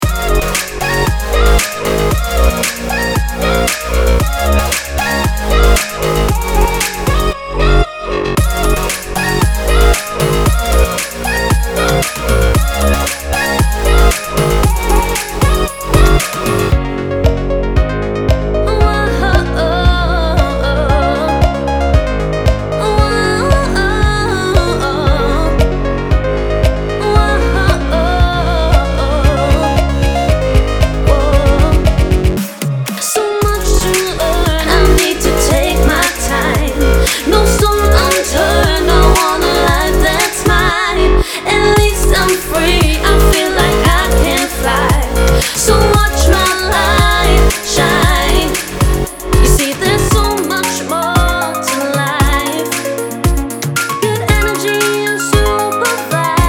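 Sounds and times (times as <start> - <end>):
future pop vocals: 0.0 - 56.4.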